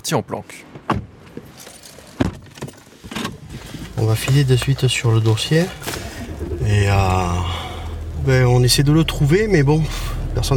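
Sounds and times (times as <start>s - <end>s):
speech: 0.1s - 1.0s, 4.0s - 6.0s, 6.6s - 7.6s, 8.2s - 10.5s
sharp clunks and rustles of someone climbing into a sedan car: 0.7s - 5.1s
keys jangling: 1.5s - 2.9s.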